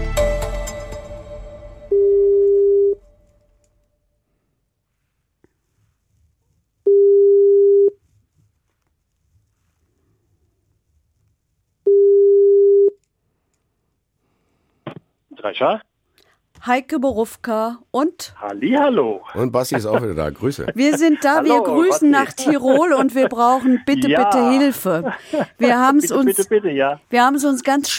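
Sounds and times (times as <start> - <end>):
telephone ringback tone of outgoing phone-a-friend call: 1.9 - 3.0, 6.9 - 8.0, 11.9 - 12.9
speech: 15.5 - 15.9, 16.6 - 27.9
laughter: 19.4 - 27.0.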